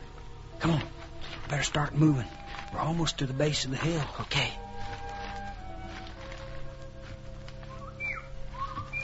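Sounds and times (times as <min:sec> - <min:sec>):
rustling outdoor background: 0:00.0 - 0:09.0
speech: 0:01.5 - 0:04.6
short high whistling bird calls: 0:07.6 - 0:09.0.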